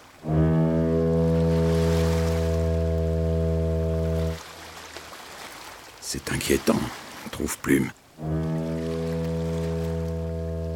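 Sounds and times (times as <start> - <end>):
large black ship in a bay sounding a booming horn blast: 0.0 - 5.0, 8.2 - 10.7
speech: 6.1 - 8.5.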